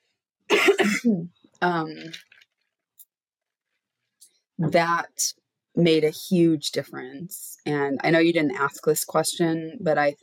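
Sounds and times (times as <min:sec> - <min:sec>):
person clearing throat gruffly: 0:00.5 - 0:01.1
person coughing: 0:00.5 - 0:01.2
speech: 0:00.8 - 0:02.4, 0:04.6 - 0:10.2.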